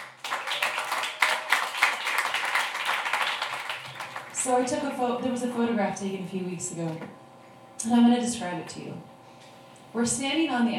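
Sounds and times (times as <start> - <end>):
audience applauding: 0.0 - 4.5
speech: 4.4 - 7.2, 7.8 - 9.1, 9.9 - 10.7.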